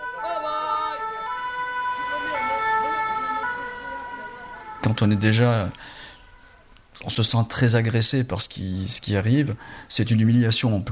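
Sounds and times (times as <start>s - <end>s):
ambulance siren wailing: 0.0s - 6.8s
city traffic noise: 0.0s - 7.1s
speech: 4.8s - 6.0s, 7.0s - 10.8s.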